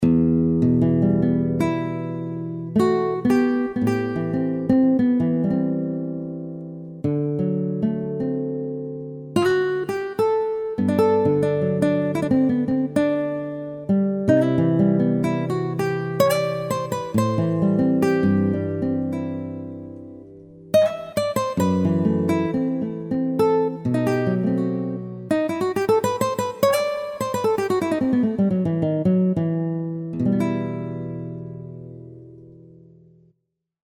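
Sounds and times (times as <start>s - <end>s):
sweet nylon string guitar: 0.0s - 33.3s.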